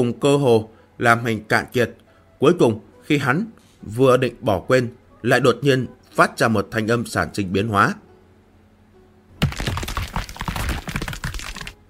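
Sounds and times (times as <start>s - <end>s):
speech: 0.0s - 8.0s
fissure splitting open with sharp splintering cracks: 9.4s - 11.8s.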